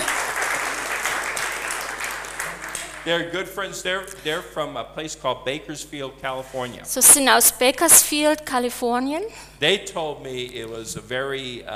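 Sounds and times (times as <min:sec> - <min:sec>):
audience applause: 0:00.0 - 0:03.3
speech: 0:03.0 - 0:11.7.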